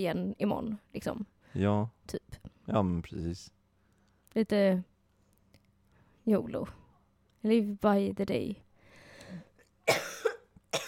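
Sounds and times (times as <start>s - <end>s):
speech: 0.0s - 3.6s, 4.4s - 4.9s, 6.3s - 6.8s, 7.4s - 8.6s, 9.3s - 10.2s
person coughing: 9.9s - 10.8s.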